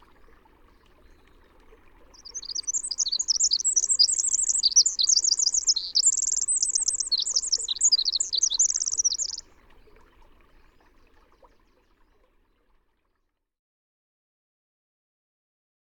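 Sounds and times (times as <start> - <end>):
Western North American winter wren song: 2.2 - 9.4.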